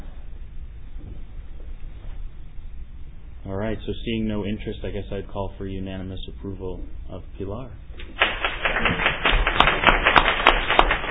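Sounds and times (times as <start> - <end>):
speech: 3.5 - 8.2
group of people at a meeting applauding: 8.0 - 11.0.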